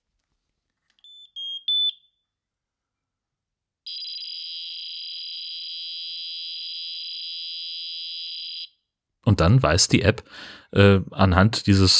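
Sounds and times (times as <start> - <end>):
smoke detector chirping tones: 1.0 - 2.2, 3.9 - 8.7
speech: 9.3 - 11.9.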